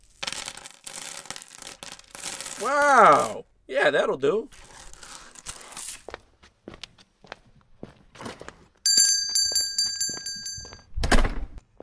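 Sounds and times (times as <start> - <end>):
pile of loose coins pouring out: 0.0 - 3.4, 4.5 - 6.1
speech: 2.6 - 4.6.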